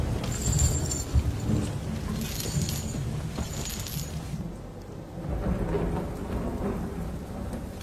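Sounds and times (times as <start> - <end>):
faint metallic jingle: 0.0 - 4.4
deep rumbling thunder: 0.0 - 7.8
heavy rain pouring outside: 0.0 - 7.8.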